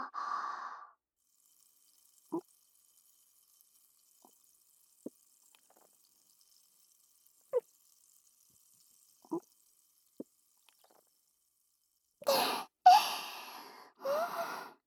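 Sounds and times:
breathy gasps: 0:00.0 - 0:00.9, 0:12.2 - 0:14.8
champagne being poured: 0:01.3 - 0:11.4.

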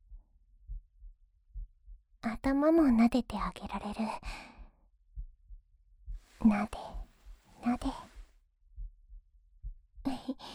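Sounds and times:
heartbeat: 0:00.0 - 0:10.5
speech: 0:02.2 - 0:04.5, 0:06.4 - 0:07.0, 0:07.6 - 0:08.1
soft rustling: 0:06.2 - 0:08.2.

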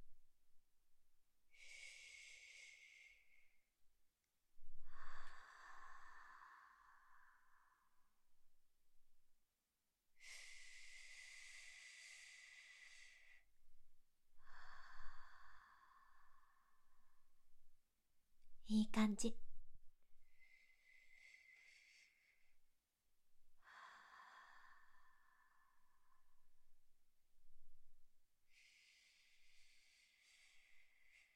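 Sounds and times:
slow breathing in and out: 0:01.5 - 0:03.7, 0:04.6 - 0:08.3, 0:10.1 - 0:17.6, 0:20.2 - 0:22.8, 0:23.5 - 0:31.3
speech: 0:18.7 - 0:19.4.

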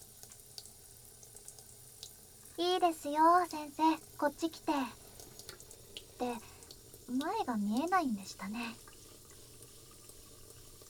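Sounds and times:
hot water spraying from a bathroom sink tap in shower mode: 0:00.0 - 0:10.8
speech: 0:02.6 - 0:05.0, 0:06.2 - 0:06.5, 0:07.1 - 0:08.8.

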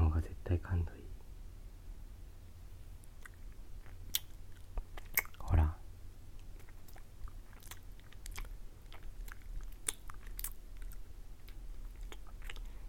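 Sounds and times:
faint steady hiss: 0:00.0 - 0:12.8
mouth nibbling on an ear: 0:03.0 - 0:05.6, 0:06.3 - 0:12.8.

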